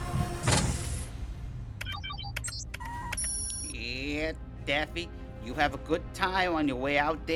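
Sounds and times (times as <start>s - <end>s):
sci-fi escape pod door whirring and slamming shut: 0.1s - 1.1s
electronic beeps and warbling chirps: 1.8s - 3.8s
speech: 4.3s - 7.3s.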